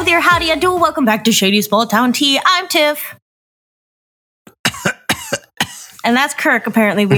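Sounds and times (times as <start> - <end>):
speech: 0.2 - 3.2, 6.1 - 7.1
person coughing: 4.5 - 6.0.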